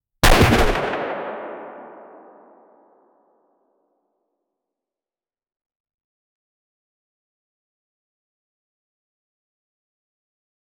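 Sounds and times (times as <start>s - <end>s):
single gunshot: 0.2s - 2.8s.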